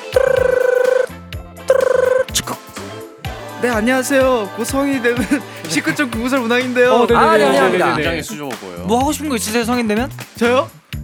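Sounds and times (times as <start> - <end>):
telephone ringing as a call is connected: 0.0 - 1.1, 1.7 - 2.4
soft music: 0.0 - 11.0
speech: 3.6 - 11.0
laughter: 4.8 - 8.4.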